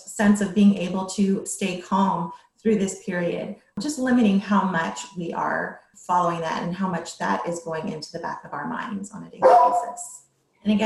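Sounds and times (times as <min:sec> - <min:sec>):
speech: 0:00.2 - 0:10.8
dogs barking at children outside: 0:09.4 - 0:09.9.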